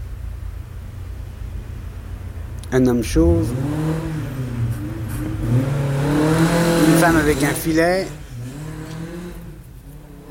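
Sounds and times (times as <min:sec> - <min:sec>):
traffic noise: 0:00.0 - 0:10.2
speech: 0:02.7 - 0:04.1, 0:07.0 - 0:08.2
rally car engine revving past: 0:03.0 - 0:10.2.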